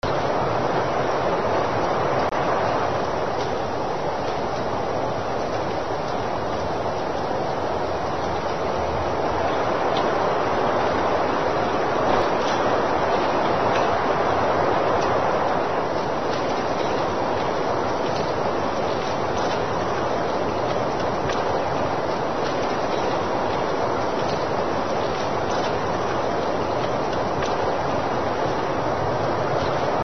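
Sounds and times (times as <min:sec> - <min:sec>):
winter winds: 0:00.0 - 0:30.0.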